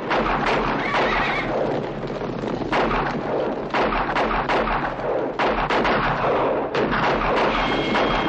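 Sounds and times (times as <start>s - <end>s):
galloping hooves: 0.0s - 8.2s
gunfire in a western film shootout: 0.0s - 8.2s
horses neighing: 0.6s - 2.1s, 7.5s - 8.2s.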